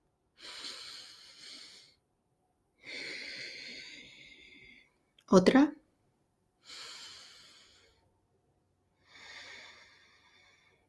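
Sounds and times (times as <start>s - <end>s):
slow breathing in and out through the nose during a guided relaxation exercise: 0.4s - 2.0s, 2.8s - 5.0s, 6.6s - 8.0s, 9.0s - 10.8s
speech: 5.3s - 5.8s.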